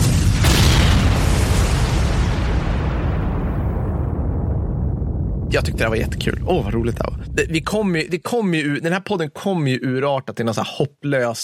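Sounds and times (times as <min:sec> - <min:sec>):
loud heavy explosion with sustained roar: 0:00.0 - 0:08.2
speech: 0:05.6 - 0:11.4.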